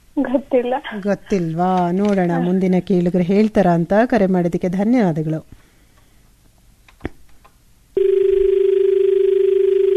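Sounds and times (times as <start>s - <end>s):
speech: 0.2s - 5.6s
steady low-pitched telephone tone after a phone-in caller's line is disconnected: 8.0s - 9.9s.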